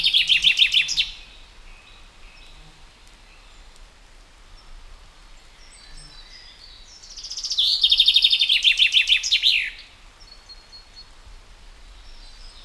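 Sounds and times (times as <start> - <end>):
common chaffinch Fringilla coelebs song: 0.0 - 3.8, 5.4 - 11.1.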